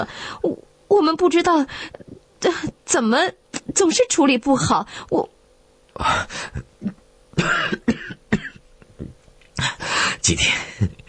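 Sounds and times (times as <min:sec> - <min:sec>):
speech: 0:00.0 - 0:05.4, 0:06.0 - 0:08.0, 0:10.2 - 0:11.0
man coughing while worrying over money: 0:06.3 - 0:11.0
throat clearing: 0:06.8 - 0:09.8.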